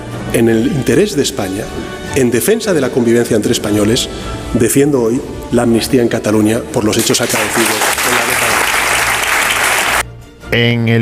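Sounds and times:
speech: 0.3 - 8.1, 10.5 - 11.0
standing ovation applause from a large party committee crowd: 7.0 - 10.0.

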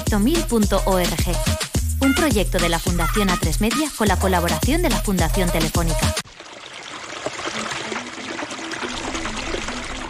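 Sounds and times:
speech: 0.1 - 6.5
water pouring from an open tap: 6.2 - 10.0.

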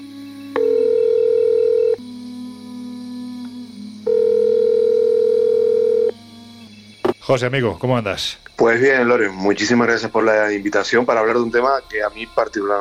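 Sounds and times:
telephone ringback tone on an outgoing call: 0.6 - 2.0, 4.1 - 6.1
speech: 7.3 - 12.7.

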